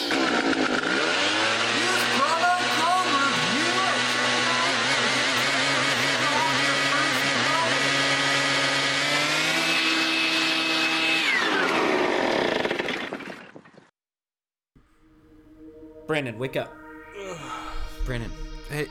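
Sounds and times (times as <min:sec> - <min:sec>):
engine-driven leaf blower running: 0:00.0 - 0:13.0
quieter low hum: 0:14.8 - 0:18.8
speech: 0:16.2 - 0:16.8, 0:18.1 - 0:18.8.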